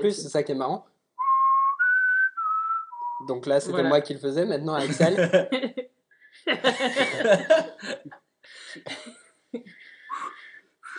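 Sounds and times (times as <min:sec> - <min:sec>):
speech: 0:00.0 - 0:00.9, 0:03.2 - 0:09.7
person whistling a short tune: 0:01.2 - 0:03.3, 0:10.1 - 0:10.9
laughter: 0:04.8 - 0:05.8, 0:06.4 - 0:10.5.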